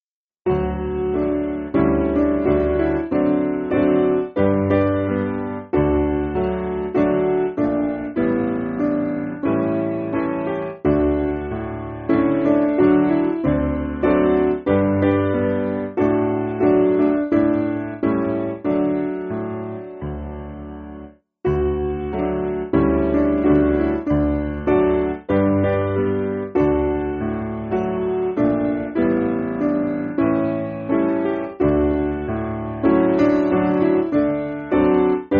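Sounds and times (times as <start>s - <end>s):
piano hymn: 0.5s - 35.3s.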